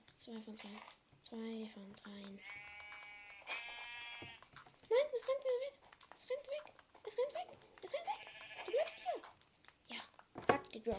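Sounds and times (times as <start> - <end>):
speech: 0.2 - 2.7, 4.9 - 10.9
sheep bleating in a video game: 2.4 - 4.4, 8.0 - 9.2.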